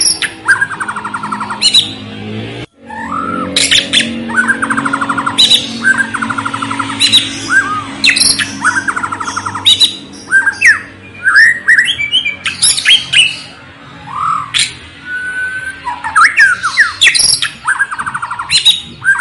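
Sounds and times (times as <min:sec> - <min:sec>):
steady low hum: 0:00.0 - 0:12.4
White-rumped shama singing rattling buzzy trills and whistles: 0:00.0 - 0:19.1.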